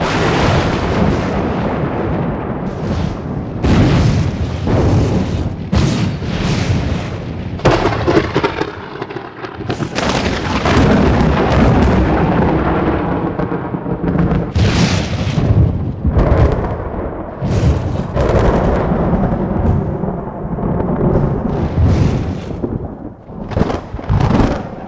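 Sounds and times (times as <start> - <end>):
thunder overhead: 0.0 - 24.8.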